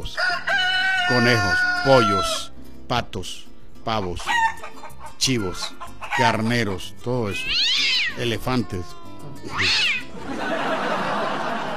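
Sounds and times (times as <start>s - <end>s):
speech: 1.1s - 4.4s, 5.2s - 10.7s
cat meowing on a livestock farm: 7.4s - 10.1s
laughter: 10.1s - 11.7s.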